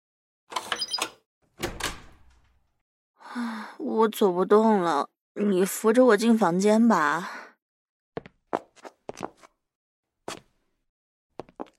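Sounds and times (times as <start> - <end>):
hotel room door lock clicking with key card: 0.6 - 2.6
hotel room door swinging and thudding: 1.5 - 2.7
speech: 3.4 - 7.4, 9.2 - 9.4.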